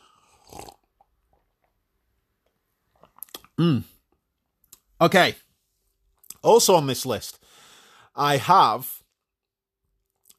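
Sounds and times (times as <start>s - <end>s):
voiced exhale or burp: 0.0s - 0.9s
swallow: 0.0s - 1.4s
sipping beer: 0.0s - 1.7s, 2.5s - 3.6s
wet mouth clicks: 3.0s - 3.6s
speech: 3.6s - 3.9s, 5.0s - 5.4s, 6.4s - 7.5s, 8.2s - 9.0s.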